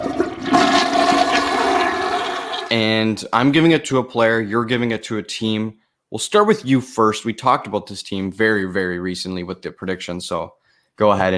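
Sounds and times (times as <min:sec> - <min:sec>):
toilet flushing: 0:00.0 - 0:02.8
speech: 0:02.7 - 0:11.3.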